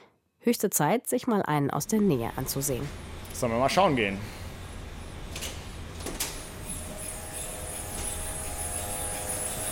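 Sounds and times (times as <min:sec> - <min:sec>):
speech: 0:00.4 - 0:04.4
cryopumps of a quantum computer cooling system hissing and humming: 0:02.3 - 0:09.7.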